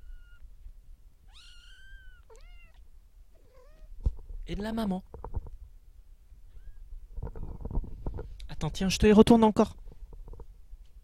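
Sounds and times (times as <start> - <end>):
kitten meowing: 0.0 - 0.4, 1.3 - 2.8, 3.4 - 3.9, 6.5 - 6.8
faint low hum: 0.0 - 11.0
speech: 4.5 - 5.2, 8.6 - 9.8.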